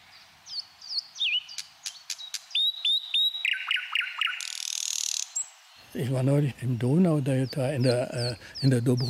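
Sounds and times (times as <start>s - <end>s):
songbird singing whistles, clicks, trills and a buzzy rattle: 0.0s - 9.0s
speech: 6.0s - 9.0s.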